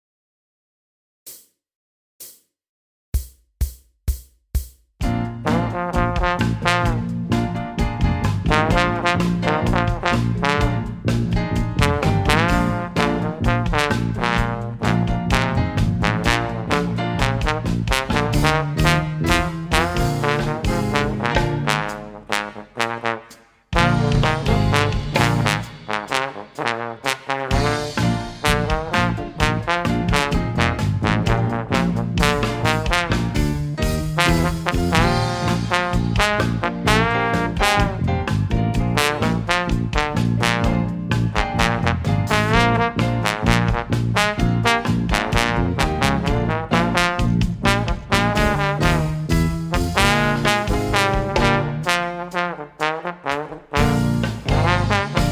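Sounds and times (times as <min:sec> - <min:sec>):
solo rock trombone: 0:05.3 - 0:55.3.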